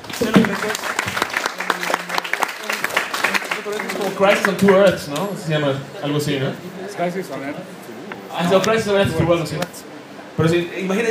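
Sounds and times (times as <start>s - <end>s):
applause: 0.0s - 4.9s
speech: 0.2s - 1.0s, 3.6s - 11.0s.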